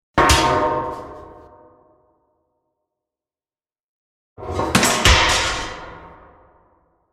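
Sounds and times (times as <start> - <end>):
metal crashes: 4.4 - 6.3.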